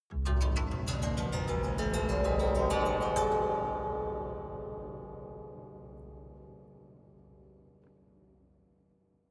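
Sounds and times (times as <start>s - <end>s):
haunted strings slow soft up stroke: 0.2s - 6.8s.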